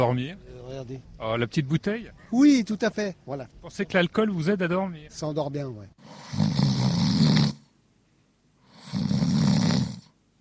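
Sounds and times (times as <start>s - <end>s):
speech: 0.0s - 6.6s
snoring after a heavy drinking meal: 6.0s - 7.7s, 8.7s - 10.2s.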